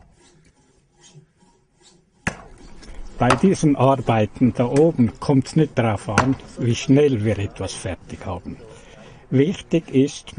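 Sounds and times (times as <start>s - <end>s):
hand saw cutting through wood: 0.0s - 3.6s
speech: 3.2s - 10.3s.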